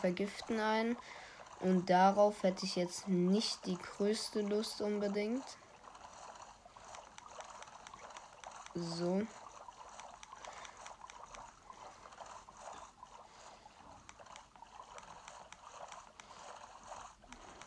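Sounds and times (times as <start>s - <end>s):
speech: 0.0s - 5.6s, 8.8s - 9.4s
rowing boat moving through water in a video game: 0.0s - 17.6s.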